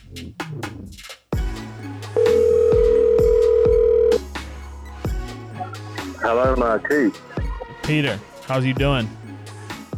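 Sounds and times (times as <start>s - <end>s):
speech: 0.1s - 1.1s, 6.3s - 9.2s
telephone dialing beeps and clicks for a phone call: 2.2s - 4.2s.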